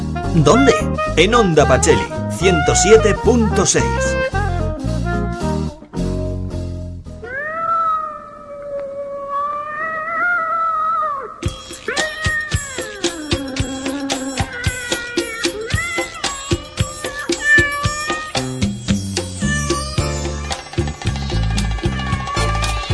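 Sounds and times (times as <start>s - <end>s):
lively rhythmic music with plucked and percussive beats: 0.0s - 6.8s, 11.4s - 22.9s
speech: 0.4s - 4.3s
cat meowing and yowling caterwauls: 7.2s - 22.9s.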